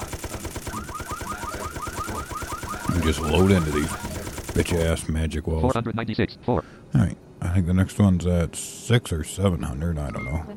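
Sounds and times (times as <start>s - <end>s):
rapid automatic gunfire in a video game: 0.0s - 5.0s
speech: 3.0s - 10.5s.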